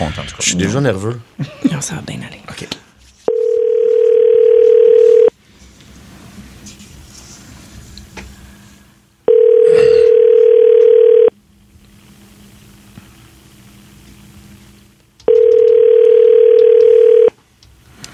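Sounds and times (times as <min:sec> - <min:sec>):
speech: 0:00.1 - 0:02.8
telephone ringback tones while a call is placed: 0:03.3 - 0:05.3, 0:09.3 - 0:11.3, 0:15.3 - 0:17.3.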